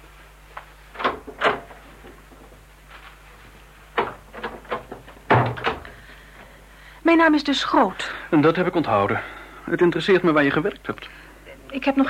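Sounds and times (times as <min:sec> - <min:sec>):
door opening and closing with wooden clunks and rattles: 0:01.0 - 0:01.8, 0:04.0 - 0:05.9
speech: 0:07.1 - 0:12.0.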